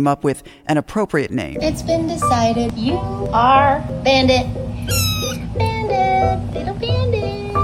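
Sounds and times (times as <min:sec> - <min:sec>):
speech: 0:00.0 - 0:07.2
small mostly white cat with black mask-like face meowing: 0:04.9 - 0:05.5.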